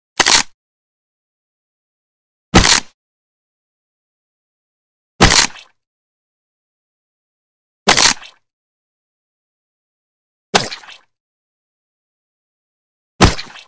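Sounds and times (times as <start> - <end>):
short sharp bone break and groin crunch: 0.2 - 0.5, 2.6 - 2.9, 5.2 - 5.7, 7.9 - 8.4.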